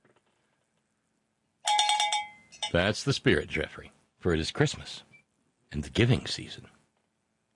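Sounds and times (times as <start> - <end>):
cowbell being rung: 1.6 - 2.8
speech: 2.7 - 5.1, 5.7 - 6.8.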